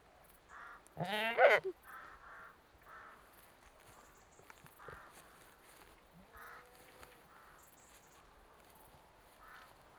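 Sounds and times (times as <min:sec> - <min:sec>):
British Saanen goat bleating: 0:01.0 - 0:01.7
speech: 0:01.0 - 0:01.8.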